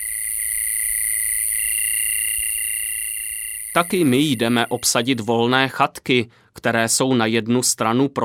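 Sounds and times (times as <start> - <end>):
chorus of crickets trilling at a retreat site with cabins: 0.0 - 5.3
speech: 3.8 - 8.2.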